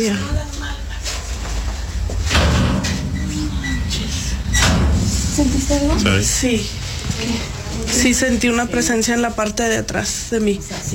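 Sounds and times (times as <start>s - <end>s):
speech: 0.0s - 0.5s, 5.4s - 10.9s
steady low hum: 0.0s - 10.9s
door pushed shut with a scraping sliding rumble and dull knock: 2.0s - 7.0s.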